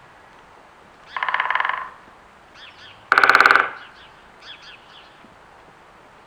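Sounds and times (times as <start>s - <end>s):
woodpecker call: 1.0s - 5.2s.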